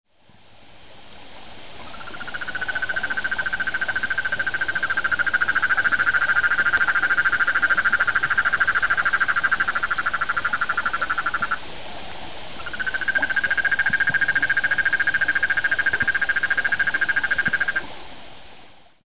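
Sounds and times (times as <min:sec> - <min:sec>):
Rhinella ornata toad calling: 0:01.8 - 0:11.6, 0:12.6 - 0:17.9.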